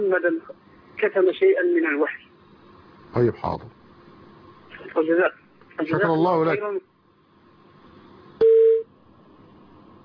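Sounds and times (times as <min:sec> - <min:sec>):
speech: 0:00.0 - 0:02.3, 0:03.1 - 0:03.8, 0:04.8 - 0:06.9
telephone beep marking an incoming call on a radio phone-in line: 0:08.4 - 0:08.8.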